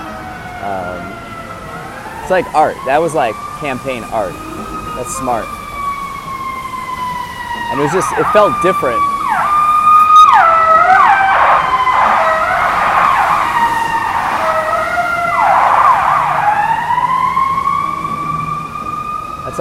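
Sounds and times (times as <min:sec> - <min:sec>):
fire truck siren wailing and yelping: 0:00.0 - 0:19.5
traffic rumble: 0:00.0 - 0:19.5
speech: 0:00.6 - 0:01.3, 0:02.3 - 0:05.6, 0:07.7 - 0:09.1.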